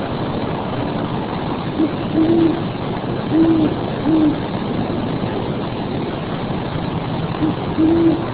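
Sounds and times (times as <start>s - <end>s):
low droning noise: 0.0s - 8.3s
owl hooting: 1.8s - 2.6s, 3.3s - 4.4s, 7.4s - 8.3s.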